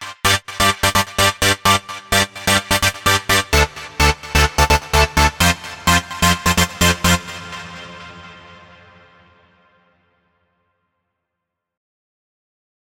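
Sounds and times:
lead synth in G: 0.3s - 9.5s.

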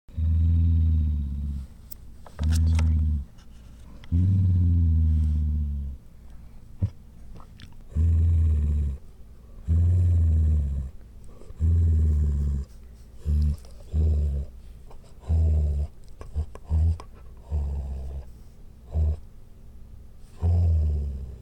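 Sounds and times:
low growling: 0.1s - 1.7s, 2.4s - 3.4s, 4.0s - 6.0s, 7.9s - 9.0s, 9.6s - 14.6s, 15.2s - 18.3s, 18.9s - 19.2s, 20.3s - 21.4s.

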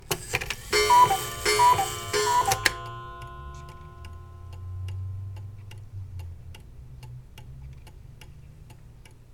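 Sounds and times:
cuckoo clock calling: 0.4s - 5.0s
cuckoo clock ticking: 0.6s - 9.3s.

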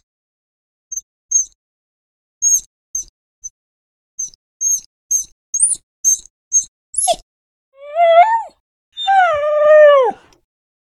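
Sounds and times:
dog whining: 7.0s - 7.2s, 7.8s - 10.3s.

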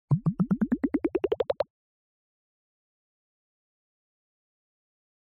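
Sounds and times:
funky synth bubble sequences: 0.0s - 1.6s.

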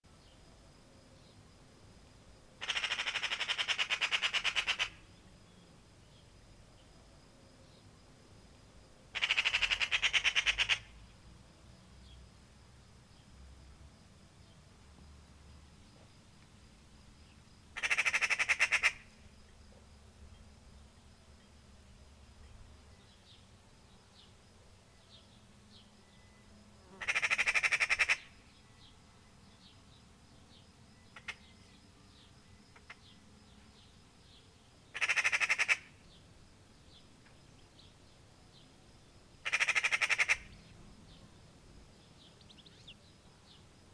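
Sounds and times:
magpie calling: 2.6s - 5.1s, 9.1s - 11.0s, 17.8s - 19.2s, 27.0s - 28.4s, 31.2s - 31.5s, 32.7s - 33.0s, 34.9s - 36.0s, 39.4s - 40.6s.

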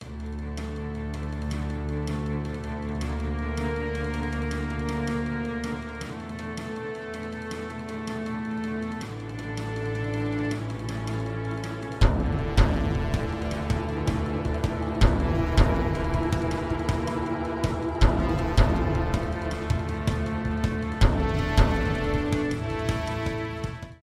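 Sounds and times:
short cinematic music: 0.0s - 24.0s.

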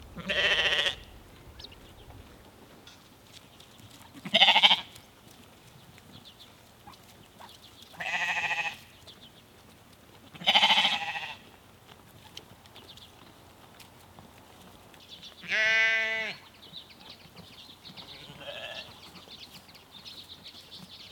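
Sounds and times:
sheep from a small herd in Norway bleating: 0.2s - 1.1s, 4.2s - 4.9s, 8.0s - 8.8s, 10.4s - 11.4s, 15.4s - 16.4s, 18.0s - 18.9s.

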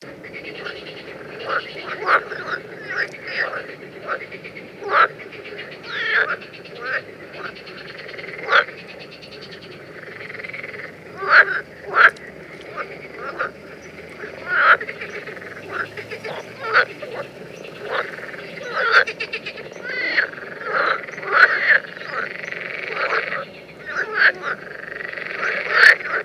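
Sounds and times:
water frogs: 0.0s - 26.2s.

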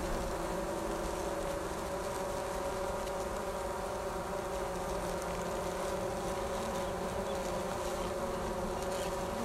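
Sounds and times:
honey bees fanning on a bee hive cover: 0.0s - 9.4s.

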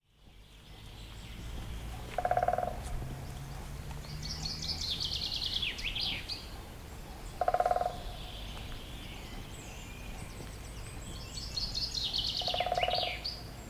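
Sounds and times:
steady rumble: 0.1s - 12.2s
songbird singing a high descending twittering phrase: 0.3s - 13.6s
woodpecker calls in short rapid rattles: 2.1s - 2.8s, 5.4s - 8.2s, 12.1s - 13.1s.

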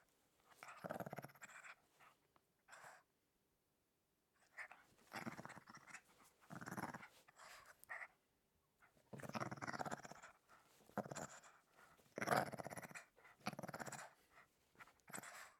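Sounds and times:
small dog growling: 0.6s - 1.8s, 4.6s - 8.0s, 9.1s - 14.2s.

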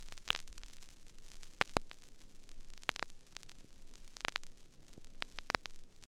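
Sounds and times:
vinyl record noise: 0.0s - 6.0s.

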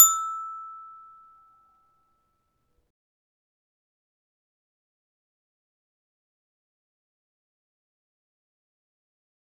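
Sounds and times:
metallophone E note: 0.0s - 1.4s.

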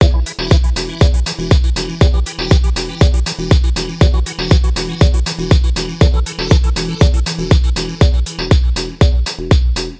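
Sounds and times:
hard acid electronic beat: 0.0s - 9.9s.

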